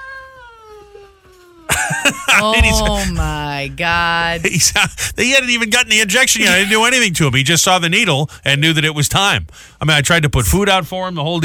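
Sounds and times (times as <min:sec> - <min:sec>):
laughter: 0:01.7 - 0:07.2
speech: 0:02.1 - 0:11.4
person imitating an angry cat yowling and hissing: 0:02.2 - 0:04.5, 0:06.4 - 0:06.8.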